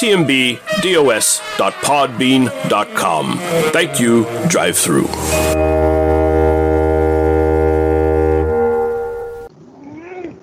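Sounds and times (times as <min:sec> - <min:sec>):
speech: 0:00.0 - 0:06.1
siren blaring with a rich droning tone: 0:03.5 - 0:09.5.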